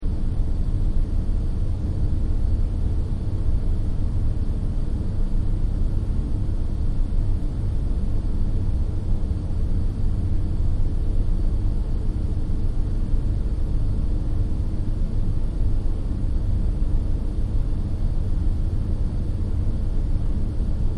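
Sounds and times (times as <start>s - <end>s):
computer hum in room tone: 0.0s - 20.9s.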